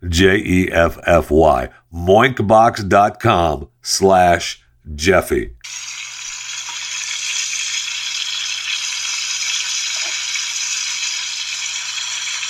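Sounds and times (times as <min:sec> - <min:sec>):
speech: 0:00.0 - 0:05.9
food sizzling in a frying pan: 0:05.6 - 0:12.4.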